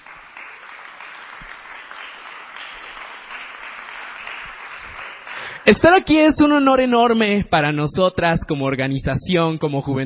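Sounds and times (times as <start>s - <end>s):
audience applauding: 0.0s - 6.0s
speech: 5.6s - 10.0s.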